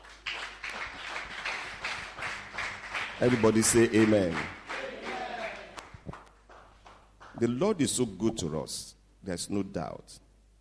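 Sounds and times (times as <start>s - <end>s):
church audience clapping as an offering: 0.0s - 7.6s
speech: 3.2s - 4.6s, 7.4s - 10.2s.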